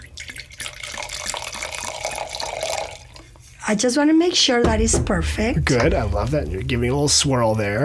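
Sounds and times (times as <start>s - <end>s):
wine poured into a glass: 0.0s - 3.6s, 5.7s - 7.8s
speech: 3.7s - 7.8s.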